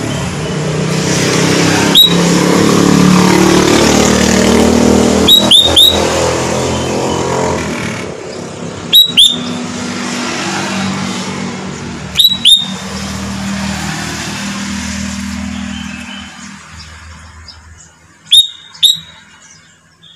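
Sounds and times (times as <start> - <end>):
low road noise: 0.0 - 20.1
Sooty-headed bulbul whistled calls: 1.9 - 2.2, 5.3 - 6.1, 8.9 - 9.6, 12.2 - 12.8, 18.3 - 20.1.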